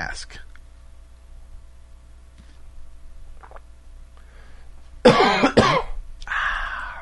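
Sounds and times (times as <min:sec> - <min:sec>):
speech: 0:00.0 - 0:00.5
coughing after drinking cold water: 0:05.0 - 0:06.0.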